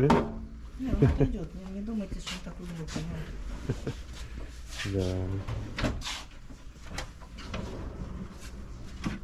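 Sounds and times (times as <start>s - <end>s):
speech: 0.0s - 6.2s
handleless double drawer sliding open and shut: 5.4s - 9.2s.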